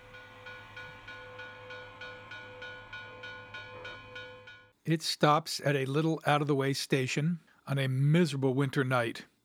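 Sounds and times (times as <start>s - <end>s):
sustained tonal hum: 0.0s - 4.7s
train chugging past with hissing puffs: 0.0s - 4.8s
speech: 4.9s - 9.3s.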